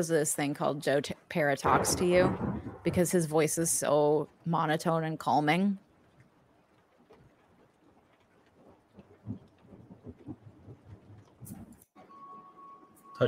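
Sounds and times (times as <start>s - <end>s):
speech: 0.0s - 5.8s
low rolling thunder rumbling: 1.6s - 3.9s, 9.1s - 11.8s.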